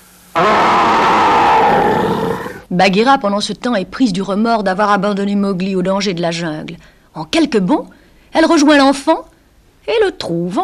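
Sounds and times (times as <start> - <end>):
voice imitating a big bear's growl: 0.4 - 2.7
speech: 2.7 - 10.6.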